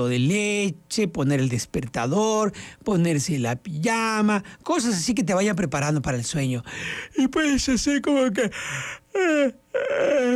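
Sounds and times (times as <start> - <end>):
speech: 0.0 - 10.3
person yawning: 8.7 - 10.3.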